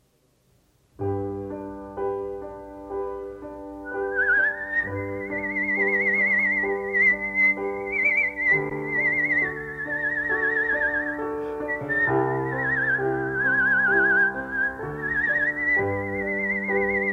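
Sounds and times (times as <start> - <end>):
steady accompanying chords: 1.0 - 17.1
person whistling a slow sustained melody: 3.9 - 17.1.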